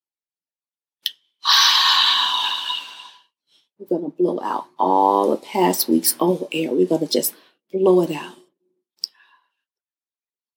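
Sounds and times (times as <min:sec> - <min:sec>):
deep inhale in a guided breathing exercise: 0:01.4 - 0:03.7
speech: 0:03.8 - 0:08.4.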